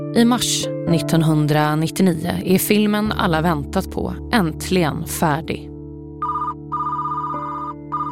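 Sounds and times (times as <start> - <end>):
speech: 0.1 - 5.7
telephone ringing: 6.2 - 8.0.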